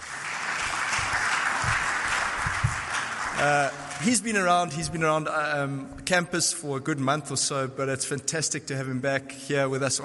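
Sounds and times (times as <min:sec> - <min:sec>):
crowd clapping steadily: 0:00.0 - 0:04.5
speech: 0:03.4 - 0:10.0.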